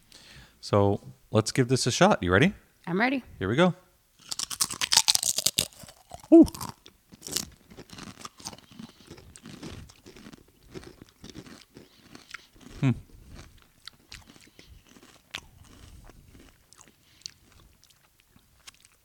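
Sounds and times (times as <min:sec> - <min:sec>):
speech: 0:00.6 - 0:03.8, 0:06.3 - 0:06.8, 0:12.8 - 0:13.0
crunching and chewing a big dill pickle-flavored chip: 0:04.2 - 0:19.0.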